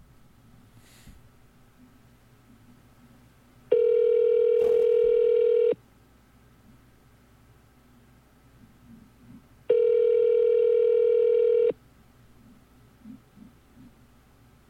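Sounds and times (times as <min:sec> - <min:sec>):
telephone ringback tone over a phone line: 0:03.7 - 0:05.8, 0:09.7 - 0:11.7.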